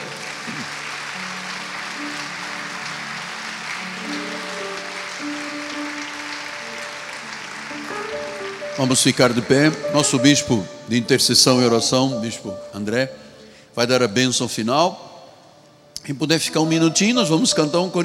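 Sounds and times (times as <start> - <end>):
audience clapping in a reverberant hall: 0.0 - 10.4
speech: 8.8 - 13.2, 13.8 - 15.0, 16.0 - 18.0.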